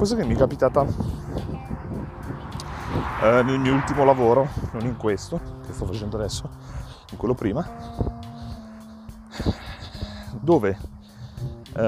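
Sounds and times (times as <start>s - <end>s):
speech: 0.0s - 1.3s, 3.2s - 8.2s, 9.4s - 9.7s, 10.4s - 10.9s
cars passing: 0.6s - 9.4s.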